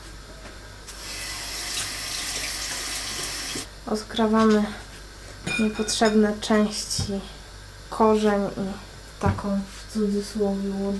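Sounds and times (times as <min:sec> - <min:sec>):
tap water running while onions are rinsed: 0:00.9 - 0:03.7
speech: 0:03.9 - 0:04.8, 0:05.5 - 0:07.4, 0:08.0 - 0:10.9.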